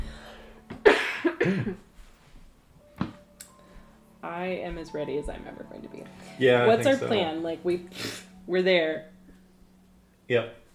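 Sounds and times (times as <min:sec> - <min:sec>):
person coughing after accidentally inhaling tea: 0:00.8 - 0:01.8
speech: 0:01.4 - 0:01.9, 0:04.3 - 0:09.1, 0:10.3 - 0:10.6.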